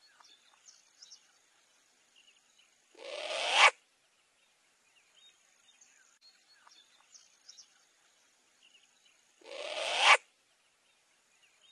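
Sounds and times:
short-eared owl long hissing rasp: 3.0s - 3.8s, 9.4s - 10.3s.

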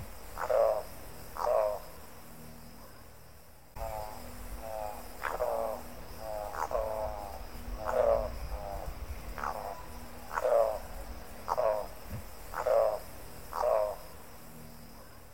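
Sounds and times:
Spot-billed Toucanet giving low hoarse croaking notes: 0.3s - 1.8s, 3.8s - 14.1s.

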